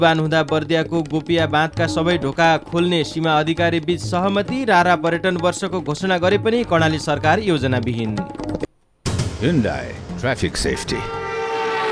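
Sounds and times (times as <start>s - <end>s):
speech: 0.0s - 8.6s, 9.4s - 11.2s
vehicle horns honking: 11.0s - 11.9s.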